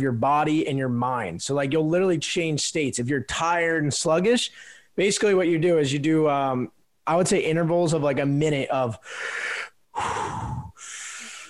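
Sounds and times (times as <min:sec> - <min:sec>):
speech: 0:00.0 - 0:10.4
rapid deep breathing exercise: 0:04.5 - 0:05.0, 0:09.0 - 0:11.4.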